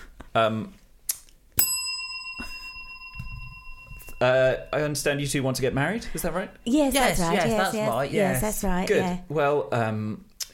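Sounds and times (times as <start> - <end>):
speech: 0.4 - 0.8, 4.2 - 10.5
small bell ringing: 1.6 - 5.8.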